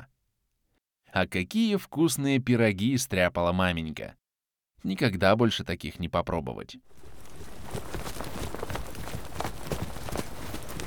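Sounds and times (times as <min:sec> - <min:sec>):
speech: 0:01.2 - 0:04.2, 0:04.8 - 0:07.1
horses trotting, pulling a covered sleigh on a packed sled track on river ice: 0:06.9 - 0:10.8.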